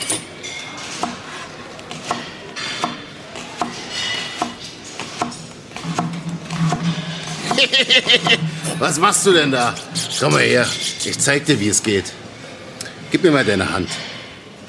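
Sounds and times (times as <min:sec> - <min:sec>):
knife chopping onions on a board: 0:00.9 - 0:07.7
laughter: 0:07.4 - 0:08.8
speech: 0:07.8 - 0:12.2, 0:13.2 - 0:14.2.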